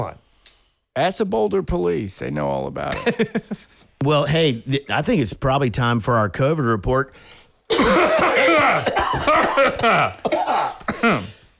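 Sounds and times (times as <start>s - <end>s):
speech: 1.0s - 11.4s
rough voiced coughing fit: 7.7s - 11.5s.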